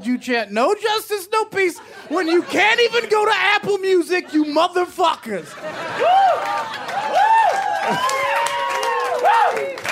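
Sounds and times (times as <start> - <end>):
speech: 0.0 - 6.2, 7.9 - 8.2
laughter: 1.4 - 8.2
live audience clapping: 6.0 - 9.9.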